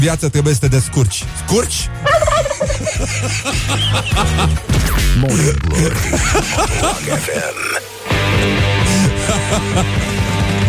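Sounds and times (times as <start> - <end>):
speech: 0.0 - 8.7, 9.5 - 10.2
laughter: 2.0 - 4.7, 5.3 - 7.9, 8.8 - 10.2
turkey gobbling: 2.1 - 2.9.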